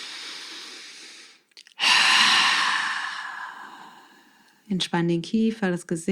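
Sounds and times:
long breathy human breaths during a guided meditation: 0:00.0 - 0:04.6
speech: 0:04.7 - 0:06.1.

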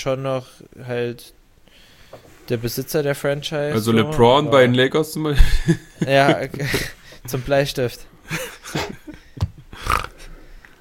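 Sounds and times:
speech: 0:00.0 - 0:01.4, 0:02.1 - 0:09.0
laughter: 0:05.4 - 0:07.0, 0:08.2 - 0:09.8
short rough pig-like grunts and snorts: 0:09.8 - 0:10.3.

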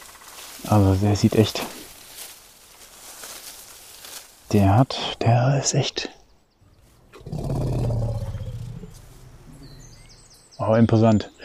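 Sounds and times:
speech: 0:00.6 - 0:01.8, 0:04.5 - 0:06.2, 0:10.6 - 0:11.4
faint bird chirps: 0:06.1 - 0:11.4
straight-tusked forest elephant rumbling call in a Central European forest: 0:06.8 - 0:10.4.

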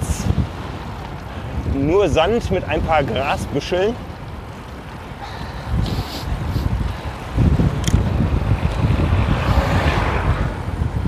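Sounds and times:
heavy steady wind rumble buffeting the microphone: 0:00.0 - 0:11.0
speech: 0:01.8 - 0:04.1
car engine and tire noise passing cyclists on uphill road: 0:08.3 - 0:11.0.

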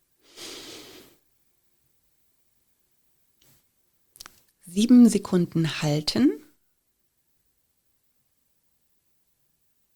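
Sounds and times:
calm breath drawn in through the nose during a breathing exercise: 0:00.2 - 0:01.2
speech: 0:04.7 - 0:06.4.

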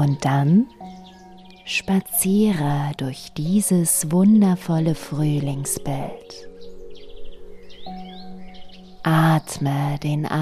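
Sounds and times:
speech: 0:00.0 - 0:01.0, 0:01.7 - 0:06.5, 0:09.0 - 0:10.4
songbirds chirping and trilling in spring: 0:00.0 - 0:10.4.

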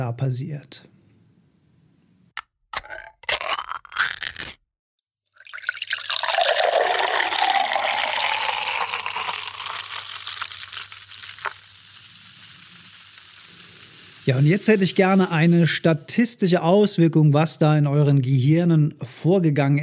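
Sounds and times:
speech: 0:00.0 - 0:01.0, 0:14.3 - 0:19.8
fizzing soda pouring: 0:05.3 - 0:16.2
soda can opening with metallic clicks and a crack: 0:06.2 - 0:14.2.

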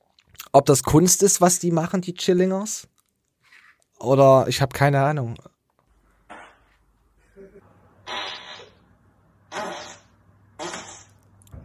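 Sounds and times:
speech: 0:00.5 - 0:03.0, 0:04.0 - 0:05.5
loud spluttering fart noises made by a man: 0:08.0 - 0:08.8, 0:09.5 - 0:11.2.

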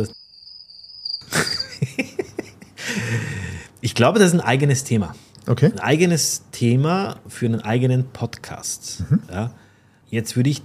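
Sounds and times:
speech: 0:00.0 - 0:00.2, 0:03.9 - 0:10.6
crickets chirping: 0:00.0 - 0:03.4
laughter: 0:01.3 - 0:03.5
loud breathy burst: 0:02.8 - 0:03.8.

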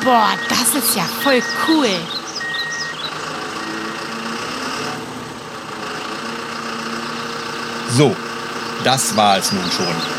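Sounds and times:
speech: 0:00.0 - 0:02.2, 0:08.0 - 0:10.1
tow truck reversing beeps: 0:00.0 - 0:04.0
tow truck engine idling: 0:00.0 - 0:10.1.

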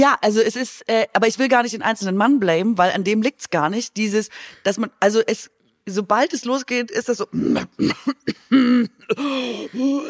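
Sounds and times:
speech: 0:00.0 - 0:10.0
person imitating throat clearing with rasping ahems: 0:07.3 - 0:10.0.

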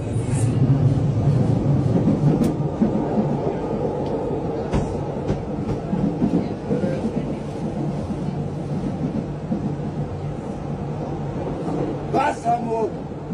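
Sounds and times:
public transport train rumbling, heard from inside a carriage: 0:00.0 - 0:13.3
rattles and clicks from the rails: 0:01.3 - 0:10.1
voices: 0:03.1 - 0:10.7.

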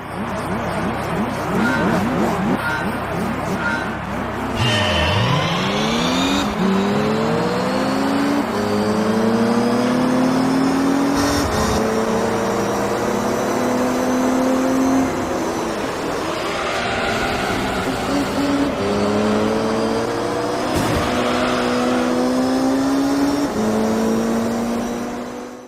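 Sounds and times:
racing car engines revving through gear changes in a video game: 0:00.0 - 0:25.6
video game racing car tire squeal and skidding: 0:00.2 - 0:06.9, 0:15.5 - 0:19.4, 0:20.4 - 0:22.8.

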